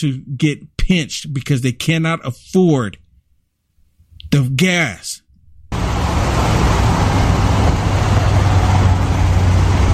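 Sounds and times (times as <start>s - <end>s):
speech: 0.0s - 3.0s, 4.3s - 5.2s
broad road noise: 5.7s - 9.9s
truck engine rumbling while pulling into a gas station: 5.7s - 9.9s.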